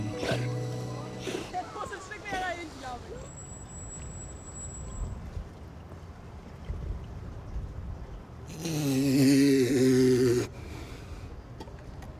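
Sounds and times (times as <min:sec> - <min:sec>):
low droning snort-like groan: 0:00.1 - 0:00.6, 0:08.5 - 0:10.6.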